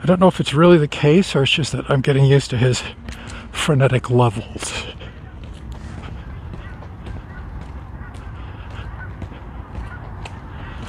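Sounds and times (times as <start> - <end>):
speech: 0.1 - 5.0
geese honking faintly in the distance: 2.5 - 10.8.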